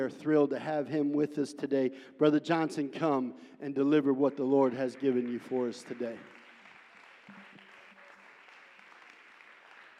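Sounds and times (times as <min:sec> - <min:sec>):
speech: 0:00.0 - 0:06.4
church service audience clapping: 0:04.6 - 0:09.9.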